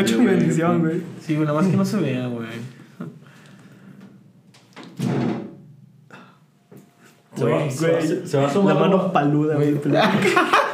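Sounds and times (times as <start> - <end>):
speech: 0.0 - 3.1, 7.4 - 10.7
door pushed shut with a solid thud: 4.8 - 5.6
laughter: 9.9 - 10.7.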